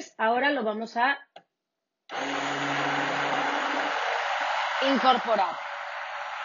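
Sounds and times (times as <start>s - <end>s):
speech: 0.2s - 1.3s, 4.8s - 5.7s
electric mixer beating a powder mixture in a bowl: 2.1s - 6.4s.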